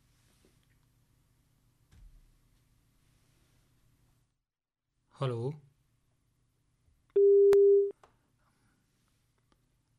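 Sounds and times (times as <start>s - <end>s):
speech: 5.2s - 5.7s
telephone busy tone after phone line cut off: 7.2s - 7.9s.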